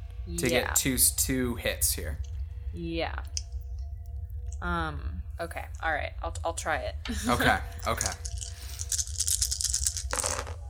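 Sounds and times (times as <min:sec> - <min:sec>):
speech: 0:00.3 - 0:03.4, 0:04.6 - 0:08.3
handful of dice rattling: 0:07.7 - 0:10.6.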